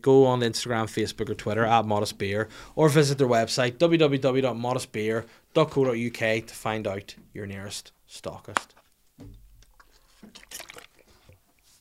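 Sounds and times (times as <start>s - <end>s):
speech: 0.0s - 9.4s
water pouring and splashing over a person: 9.2s - 11.7s
wet squishing sounds: 9.6s - 11.7s.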